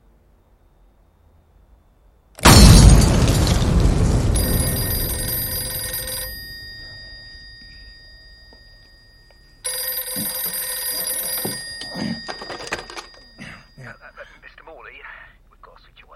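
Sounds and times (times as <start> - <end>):
outside television broadcasting van exploding at night: 2.4 - 5.6
high metallic ringing tones: 2.4 - 14.5.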